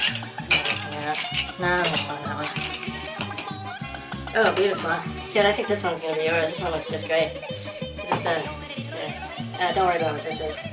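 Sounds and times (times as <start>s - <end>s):
metal spoon stirring drinks in glasses: 0.0s - 3.5s, 4.4s - 5.4s, 7.6s - 8.3s
speech: 1.1s - 2.6s, 4.4s - 7.5s, 8.2s - 8.6s, 9.6s - 10.7s.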